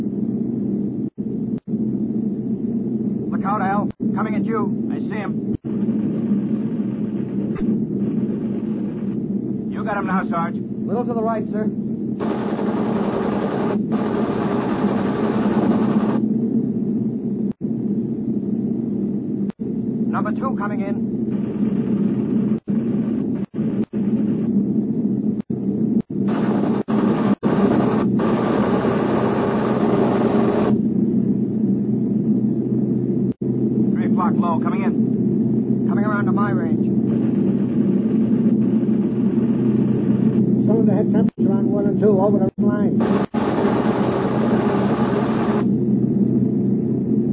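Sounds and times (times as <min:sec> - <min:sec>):
aircraft engine droning in flight: 0:00.0 - 0:47.3
brief higher-pitched whines: 0:00.0 - 0:47.3
speech: 0:04.2 - 0:06.2, 0:09.8 - 0:12.6
sharp clicks: 0:43.2 - 0:43.4.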